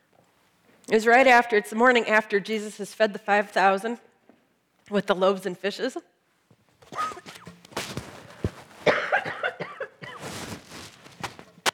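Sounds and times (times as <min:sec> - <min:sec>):
speech: 0:00.9 - 0:04.1, 0:04.9 - 0:06.1
person coughing fit with harsh rough bursts: 0:06.9 - 0:07.4, 0:08.8 - 0:10.2.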